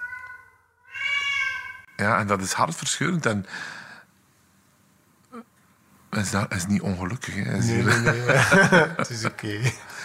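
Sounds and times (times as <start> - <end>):
deaf white cat meowing: 0.0 - 1.9
speech: 2.0 - 3.8, 6.2 - 10.0
laughter: 7.6 - 10.0.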